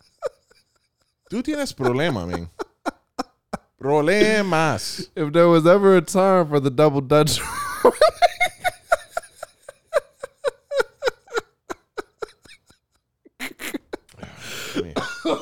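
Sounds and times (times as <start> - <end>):
laughter: 0.0 - 5.2, 7.3 - 12.7, 13.4 - 15.4
speech: 1.3 - 2.6, 3.8 - 8.2
harsh coughs ending in a rough noisy hack: 13.5 - 15.4
short rhythmic throat-clearing grunts: 14.1 - 15.4.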